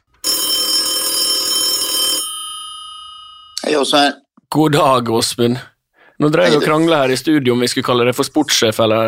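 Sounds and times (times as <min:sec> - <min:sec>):
telephone ringing tone of a call being placed: 0:00.2 - 0:03.6
speech: 0:03.7 - 0:09.0.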